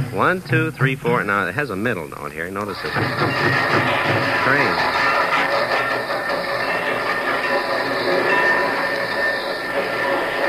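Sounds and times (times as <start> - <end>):
speech: 0.2 - 5.1
train rumbling along the rails: 2.8 - 10.4.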